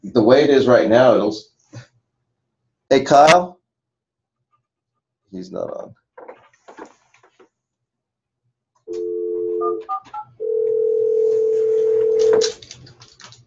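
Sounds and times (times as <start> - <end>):
speech: 0.2 - 1.5, 2.9 - 3.6, 5.3 - 6.0, 12.4 - 12.7
buzzing phone line ring tones: 8.9 - 12.5.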